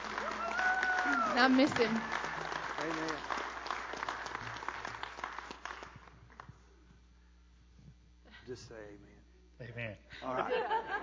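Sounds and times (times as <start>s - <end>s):
audience applauding: 0.0s - 6.5s
speech: 1.3s - 2.2s, 2.8s - 3.4s, 8.5s - 11.0s
laughter: 10.1s - 11.0s.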